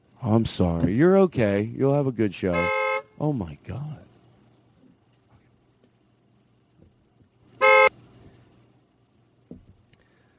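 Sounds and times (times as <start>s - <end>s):
speech: 0.2s - 4.1s
car horn honk: 2.5s - 3.2s, 7.6s - 8.0s
faint knock: 9.4s - 9.8s.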